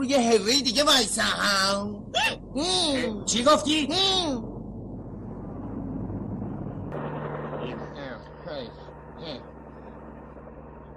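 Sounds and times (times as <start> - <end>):
speech: 0.0 - 4.5
news helicopter flying overhead with rumbling rotor drone: 5.4 - 10.9.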